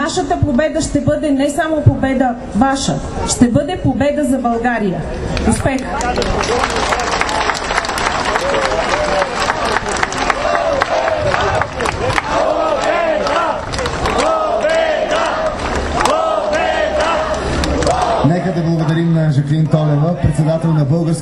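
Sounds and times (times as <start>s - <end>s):
speech: 0.0s - 7.2s, 19.4s - 21.1s
large crowd clapping at a political coalition rally: 5.3s - 18.9s
large crowd cheering and shouting at a political coalition rally: 6.2s - 20.8s.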